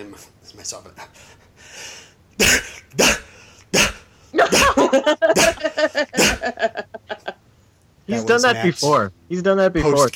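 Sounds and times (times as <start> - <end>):
speech: 0.0 - 3.2, 4.9 - 6.9, 8.1 - 10.1
human voice imitating barking: 2.4 - 6.7
laughter: 4.4 - 7.4.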